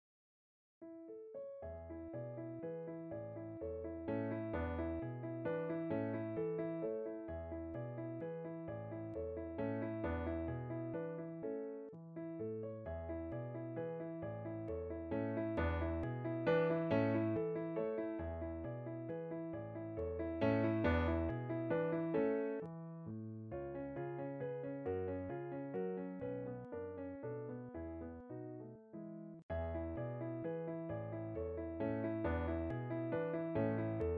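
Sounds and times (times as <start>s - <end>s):
waltz for piano: 0.8s - 34.1s.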